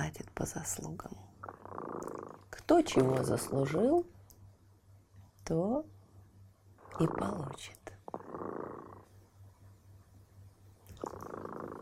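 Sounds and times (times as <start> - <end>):
speech: 0.4 - 1.3, 2.7 - 4.2, 5.5 - 6.0, 7.0 - 7.8
cat purring: 0.7 - 4.0, 6.8 - 9.4, 10.8 - 11.7.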